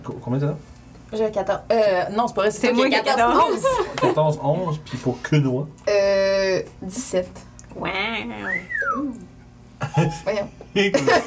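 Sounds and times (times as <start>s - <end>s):
speech: 0.2s - 11.2s
person whistling to call a device: 8.4s - 9.2s.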